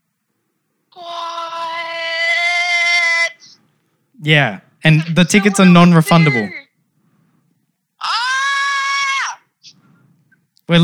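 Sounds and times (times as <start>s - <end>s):
person screaming in excitement: 1.0s - 3.5s, 8.0s - 9.4s
speech: 4.2s - 6.6s, 10.7s - 10.8s.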